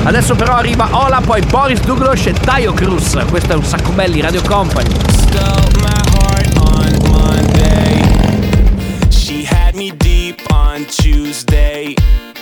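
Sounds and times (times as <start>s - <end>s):
speech: 0.0s - 6.1s, 10.8s - 12.2s
Harley-Davidson motorcycle engine starting and revving: 0.0s - 9.7s.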